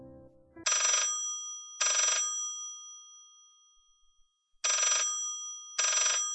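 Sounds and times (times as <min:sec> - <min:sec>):
old-fashioned telephone bell ringing in bright metallic bursts: 0:00.7 - 0:03.8, 0:04.6 - 0:06.3.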